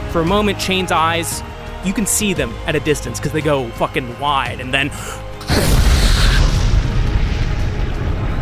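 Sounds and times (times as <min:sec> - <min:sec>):
speech: 0:00.1 - 0:05.3
hissing water spray: 0:05.4 - 0:07.2
explosion in the water: 0:05.4 - 0:08.3.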